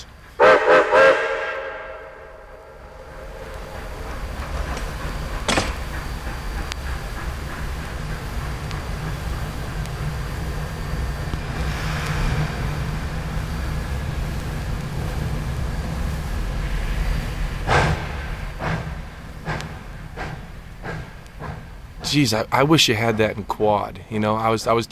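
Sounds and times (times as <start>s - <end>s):
sharp metallic clanks from train wheels and cars: 0.0s - 15.2s, 16.6s - 23.6s
train rolling past with a low rumble: 0.0s - 24.8s
train whistle: 0.4s - 4.4s
speech: 22.1s - 24.8s.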